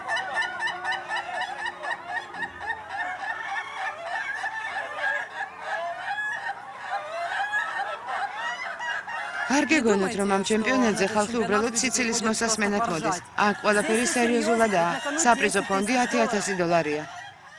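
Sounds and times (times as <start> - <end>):
laughter: 0.0 - 8.7, 9.4 - 17.0
rooster crowing long in a crowing contest: 0.0 - 17.5
speech: 9.5 - 17.2.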